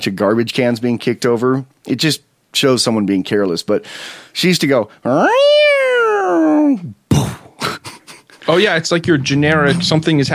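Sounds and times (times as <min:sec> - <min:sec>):
speech: 0:00.0 - 0:07.0, 0:08.5 - 0:10.3
stray cat yowling: 0:05.1 - 0:06.8.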